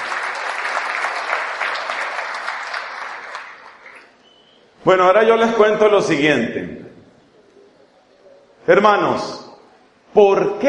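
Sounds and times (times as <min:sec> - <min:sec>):
crowd applauding: 0:00.0 - 0:04.3
speech: 0:04.8 - 0:06.8, 0:08.7 - 0:09.4, 0:10.1 - 0:10.6.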